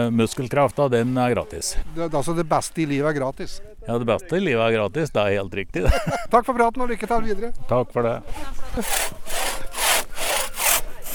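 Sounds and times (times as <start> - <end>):
speech: 0.0 - 9.8
hand saw cutting wood: 8.8 - 11.1.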